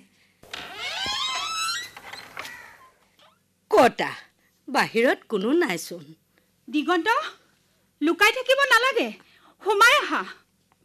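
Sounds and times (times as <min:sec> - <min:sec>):
house door hinges creaking as the door is opened: 0:00.4 - 0:03.4
speech: 0:03.8 - 0:07.4, 0:08.0 - 0:10.4.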